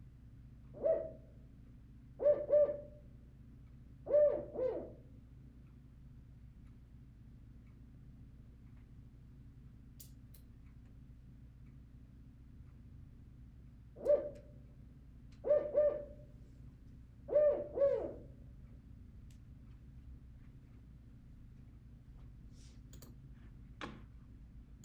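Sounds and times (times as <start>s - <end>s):
spotted owl calling: 0.8s - 1.2s, 2.2s - 2.9s, 4.1s - 5.0s, 14.0s - 14.5s, 15.4s - 16.3s, 17.3s - 18.3s.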